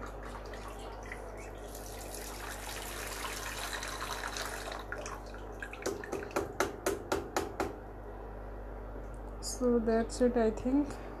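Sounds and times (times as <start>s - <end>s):
tap water running: 0.0s - 7.0s
splashes or knocks while washing face and utensils: 5.7s - 6.8s
speech: 9.6s - 11.1s.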